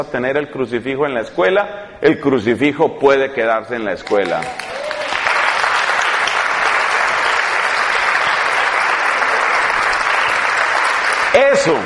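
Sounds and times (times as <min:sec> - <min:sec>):
speech: 0:00.0 - 0:04.8, 0:11.6 - 0:11.8
audience applause: 0:04.1 - 0:11.8.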